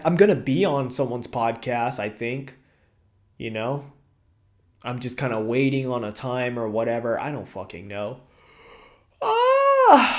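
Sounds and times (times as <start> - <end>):
speech: 0.0 - 2.6, 3.4 - 4.0, 4.8 - 8.3, 9.2 - 10.1
person yawning: 9.2 - 10.1.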